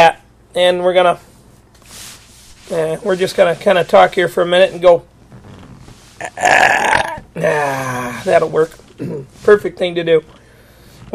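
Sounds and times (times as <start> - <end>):
speech: 0.1 - 1.3, 2.7 - 5.5, 6.2 - 10.4
person burping on purpose: 6.2 - 8.2.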